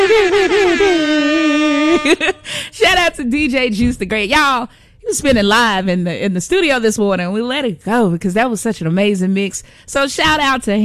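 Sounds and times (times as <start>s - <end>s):
air horn sound effect triggered from a button: 0.0s - 2.3s
speech: 2.0s - 10.8s.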